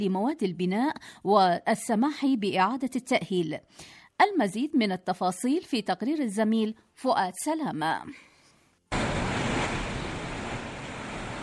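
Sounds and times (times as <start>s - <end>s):
speech: 0.0s - 8.3s
sea waves breaking on the shore: 8.9s - 11.4s.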